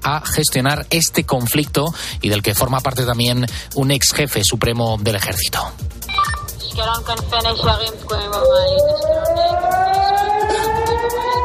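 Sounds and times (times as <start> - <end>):
speech: 0.0 - 6.1, 6.8 - 10.1
harmonic tones and noise: 6.0 - 11.4
air raid siren wailing: 7.9 - 11.4.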